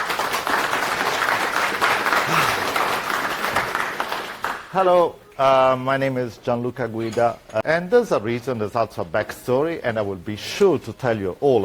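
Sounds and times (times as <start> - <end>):
audience applauding: 0.0 - 4.7
speech: 4.7 - 11.6.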